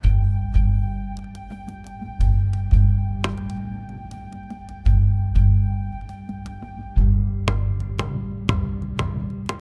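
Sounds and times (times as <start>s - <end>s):
African emotional instrumental music: 0.0s - 9.6s.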